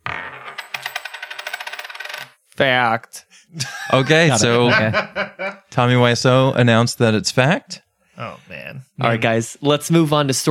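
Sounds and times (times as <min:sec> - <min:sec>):
flipped coin landing with a clatter: 0:00.0 - 0:02.4
speech: 0:02.6 - 0:10.4
laughter: 0:03.6 - 0:05.6.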